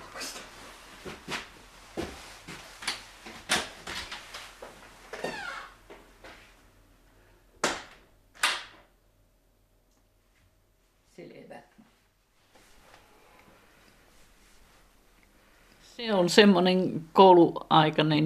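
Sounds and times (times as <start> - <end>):
door opening and shutting: 5.2 - 5.8
speech: 16.0 - 18.2.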